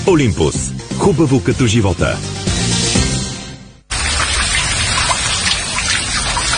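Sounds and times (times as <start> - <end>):
speech: 0.1 - 2.8
water spraying from a hand shower: 3.9 - 6.5.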